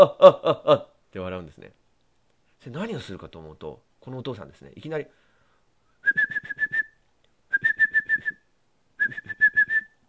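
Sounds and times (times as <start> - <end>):
speech: 0.0 - 1.8, 2.6 - 5.2, 6.0 - 6.6, 9.1 - 9.4
person whistling as if training a dog: 6.0 - 10.0.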